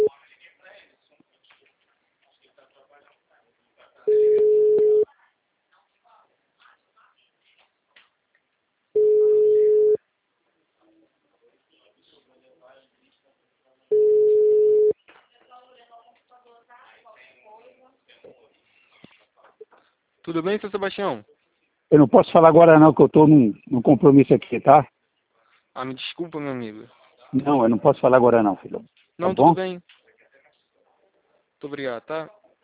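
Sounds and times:
ringback tone of an outgoing phone call: 0:04.1 - 0:05.0, 0:09.0 - 0:10.0, 0:13.9 - 0:14.9
speech: 0:20.4 - 0:25.0, 0:25.8 - 0:30.0, 0:31.6 - 0:32.4.

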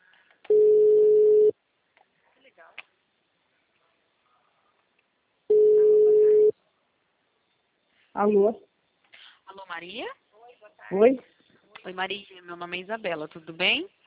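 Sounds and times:
ringing tone of an outgoing phone call: 0:00.5 - 0:01.6, 0:05.5 - 0:06.5
speech: 0:08.2 - 0:08.7, 0:09.7 - 0:10.2, 0:10.9 - 0:14.0.

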